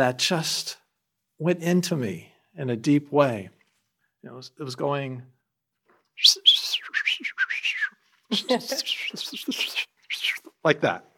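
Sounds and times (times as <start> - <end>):
speech: 0.0 - 0.8, 1.4 - 3.6, 4.2 - 5.4, 6.2 - 6.6, 8.3 - 9.9, 10.6 - 11.1
person whistling an imitation of birdsong: 6.2 - 10.5.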